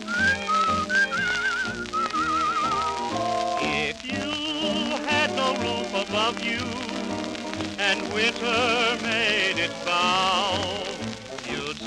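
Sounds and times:
person whistling a bright lilting melody: 0.0s - 5.8s
full instrumental accompaniment: 0.0s - 11.8s
speech: 6.1s - 6.9s, 7.8s - 11.0s.

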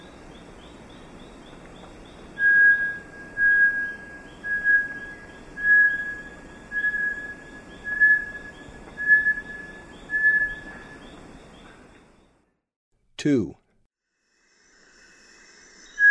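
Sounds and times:
soft rhythmic insect chirping: 0.0s - 12.4s
Bartlett's tinamou song in Ecuador: 2.4s - 11.0s
speech: 13.2s - 13.6s.

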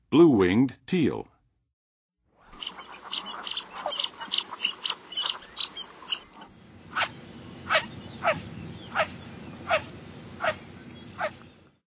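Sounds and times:
Blue-winged Teal calling in the Western USA: 2.4s - 11.7s.

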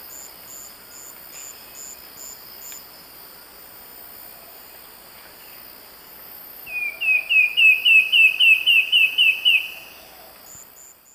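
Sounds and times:
constant high insect hum: 0.0s - 11.1s
Sooty antbird Myrmeciza fortis whistling song in eastern lowlands of South America: 6.7s - 10.0s.

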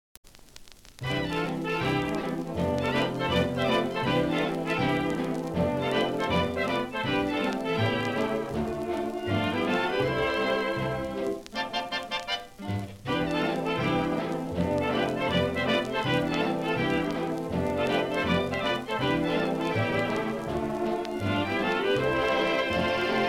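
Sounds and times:
1932 jazz orchestra instrumental: 1.0s - 23.2s.

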